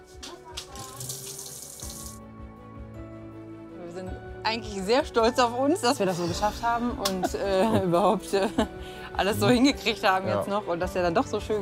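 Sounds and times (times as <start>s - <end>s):
small camping water tap running into a sink in a motorhome kitchen: 0.6s - 2.2s
speech: 4.0s - 11.6s.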